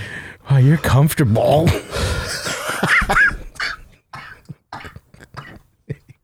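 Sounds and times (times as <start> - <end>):
speech: 0.6 - 1.9
person coughing: 1.7 - 5.6.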